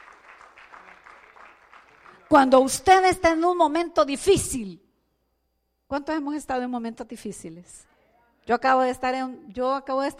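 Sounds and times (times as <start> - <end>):
church congregation applauding: 0.0 - 2.6
speech: 2.3 - 4.8, 5.9 - 7.9, 8.5 - 10.1.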